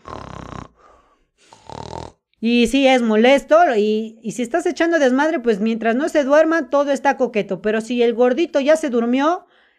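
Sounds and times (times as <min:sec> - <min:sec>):
raspy breath: 0:00.0 - 0:01.8, 0:09.5 - 0:09.7
person imitating snoring with their voice: 0:00.0 - 0:02.3
speech: 0:02.4 - 0:09.5.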